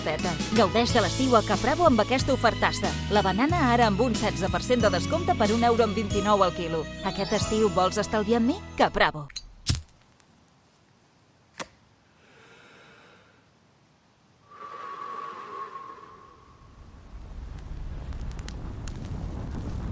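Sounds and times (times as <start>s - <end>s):
speech: 0.0s - 9.4s
fire roaring: 14.5s - 19.8s
sharp crack: 17.0s - 19.8s.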